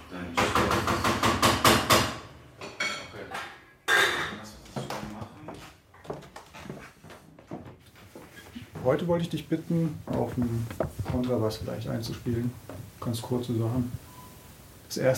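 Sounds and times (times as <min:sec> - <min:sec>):
pots and dishes clattering as a man cooks at home: 0:00.4 - 0:04.5
speech: 0:08.9 - 0:14.1, 0:14.9 - 0:15.1.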